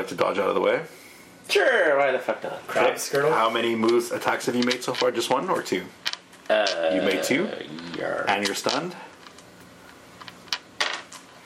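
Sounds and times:
speech: 0.0 - 9.1
dice rolling across a hard tabletop: 3.1 - 11.4.

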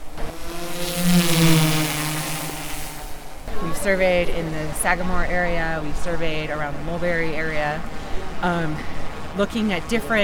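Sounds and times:
drone rotor wash noise: 0.0 - 3.6
large black crab-like drone buzzing: 0.0 - 3.6
speech: 3.8 - 10.2.

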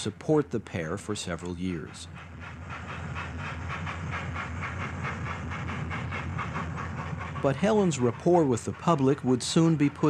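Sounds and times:
speech: 0.0 - 2.3, 7.4 - 10.0
train wheels clattering over rail joints: 0.0 - 10.0.

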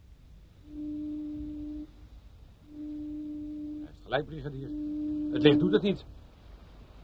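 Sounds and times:
low rumbling background: 0.0 - 7.0
deep lighthouse foghorn sounding SOS in Morse code in thick evening fog: 0.6 - 2.0, 2.6 - 6.1
speech: 4.1 - 6.1.

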